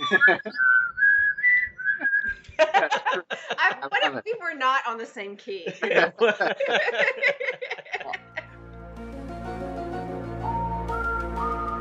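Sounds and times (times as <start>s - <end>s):
laughter: 0.0s - 0.7s, 2.0s - 4.2s, 5.7s - 8.6s
person whistling a slow TV theme tune: 0.0s - 2.4s, 10.4s - 11.7s
speech: 0.1s - 0.8s, 2.7s - 8.2s.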